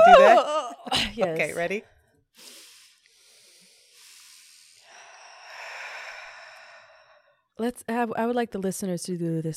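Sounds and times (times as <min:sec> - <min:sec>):
speech: 0:00.1 - 0:02.6, 0:07.6 - 0:09.5
several people taking a slow deep collective breath: 0:02.4 - 0:07.5.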